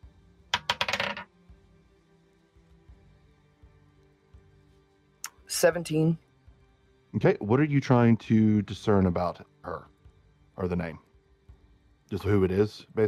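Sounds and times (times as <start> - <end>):
dice clattering across a table during a tabletop role-playing game: 0.5 - 1.3
speech: 5.5 - 6.2, 7.1 - 9.9, 10.6 - 11.0, 12.1 - 13.0.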